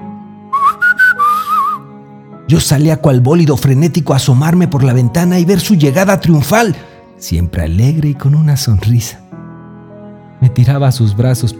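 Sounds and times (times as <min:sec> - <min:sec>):
person whistling: 0:00.5 - 0:01.9
speech: 0:02.5 - 0:09.2, 0:10.4 - 0:11.5.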